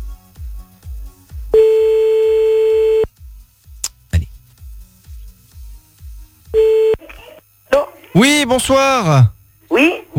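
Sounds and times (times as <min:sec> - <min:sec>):
telephone line tone while a number is being called: 0:01.6 - 0:03.1, 0:06.6 - 0:07.0
speech: 0:08.2 - 0:10.1.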